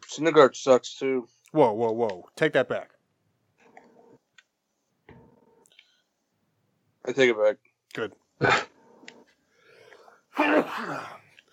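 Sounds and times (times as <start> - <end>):
speech: 0.2 - 3.0, 7.0 - 8.7, 10.4 - 11.2
faint breathing: 5.7 - 6.2, 9.4 - 10.3
person sneezing: 8.4 - 8.7, 10.3 - 11.3.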